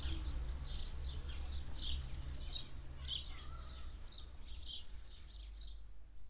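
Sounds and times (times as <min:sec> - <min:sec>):
passing tractor engine rumble: 0:00.0 - 0:04.4
two disturbed swallows chirping while flying fast overhead: 0:00.0 - 0:05.9.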